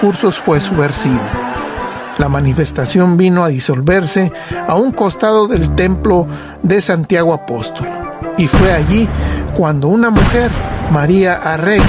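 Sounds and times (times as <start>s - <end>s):
speech: 0.0s - 1.6s, 2.2s - 11.8s
laughter: 0.0s - 3.4s
narrator talking: 0.0s - 11.8s
gun fired into the air beside the church of Santiago Apóstol: 8.5s - 9.1s, 10.2s - 11.0s.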